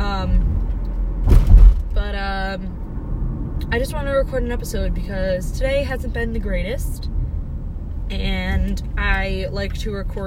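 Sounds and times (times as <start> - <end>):
low steady rumble inside a stationary car: 0.0 - 10.2
brief rustling thump: 1.2 - 2.0
speech: 3.7 - 7.1, 8.1 - 10.2.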